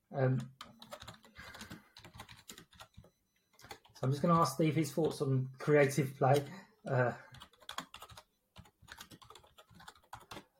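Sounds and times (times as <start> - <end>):
speech: 0.2 - 0.6, 4.0 - 7.3
computer keyboard typing: 0.3 - 5.2, 6.2 - 6.5, 7.2 - 10.5.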